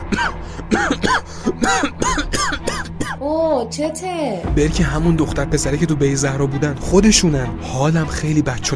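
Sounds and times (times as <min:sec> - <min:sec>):
person coughing and choking on chocolate caught in the throat: 0:00.0 - 0:03.2
person gasping: 0:00.4 - 0:01.8
speech: 0:03.6 - 0:08.7.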